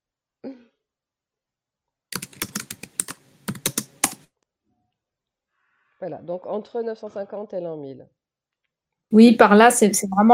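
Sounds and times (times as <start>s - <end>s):
fingers typing on a computer keyboard: 2.1s - 4.3s
speech: 6.0s - 8.2s, 9.1s - 10.3s.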